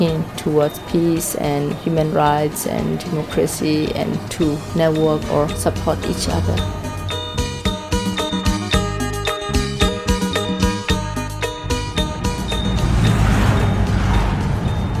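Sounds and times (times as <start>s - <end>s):
speech: 0.0s - 6.9s
rushing road and wind noise: 0.0s - 8.6s, 11.2s - 14.9s
pickup truck engine rumble: 4.2s - 14.9s.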